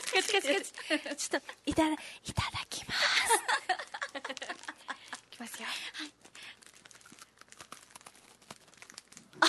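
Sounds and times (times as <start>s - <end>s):
speech: 0.1s - 3.6s, 5.4s - 6.3s
crunchy crackling chewing for ASMR: 6.2s - 9.4s.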